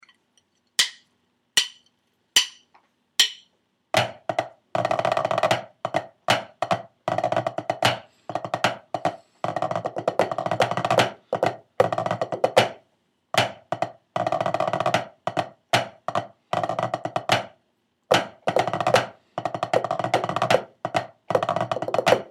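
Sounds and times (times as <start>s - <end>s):
tenor snare drum: 4.0s - 12.8s, 13.4s - 22.2s.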